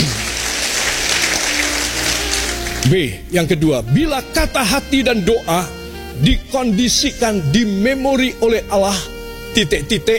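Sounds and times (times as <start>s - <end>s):
audience applauding during a motivational talk: 0.0s - 2.9s
speech: 2.9s - 10.1s.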